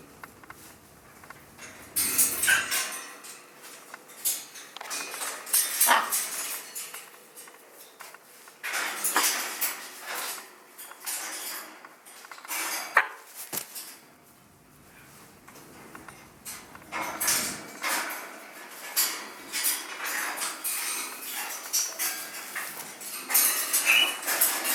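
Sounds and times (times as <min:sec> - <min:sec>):
light clicking and clattering: 0:00.2 - 0:14.0, 0:15.1 - 0:24.7
hand-reared scarlet macaw chicks begging while being fed: 0:23.6 - 0:24.5.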